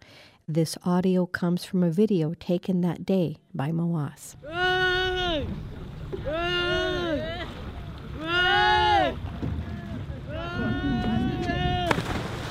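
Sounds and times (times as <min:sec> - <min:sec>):
speech: 0:00.5 - 0:04.8, 0:05.4 - 0:07.4
people screaming and wailing from a capsized boat at sea: 0:04.4 - 0:12.0
open water at sea: 0:04.4 - 0:12.5.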